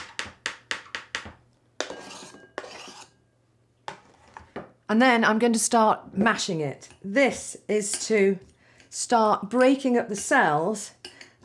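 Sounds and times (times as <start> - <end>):
knife scraping strokes on a hard surface: 1.8 - 3.2
speech: 4.9 - 11.0.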